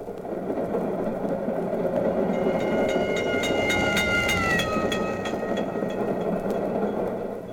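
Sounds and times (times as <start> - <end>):
moving train rumbling: 0.0 - 7.5
crossing bell clanging: 2.0 - 7.3.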